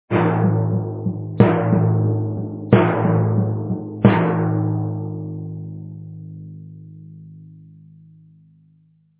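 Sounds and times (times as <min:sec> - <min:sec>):
tribal drum: 0:00.1 - 0:06.6.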